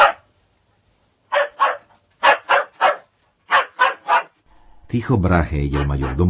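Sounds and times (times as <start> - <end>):
dog barking: 0.0 - 0.3, 1.3 - 4.4, 5.7 - 6.2
speech: 4.9 - 6.2.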